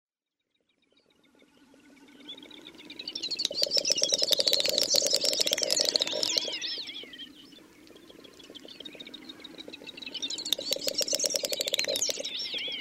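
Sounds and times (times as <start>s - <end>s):
Great snipe swooping whistled notes: 1.5s - 12.8s
Great snipe display clicks and rattle of ticks: 3.3s - 6.6s, 10.3s - 12.8s.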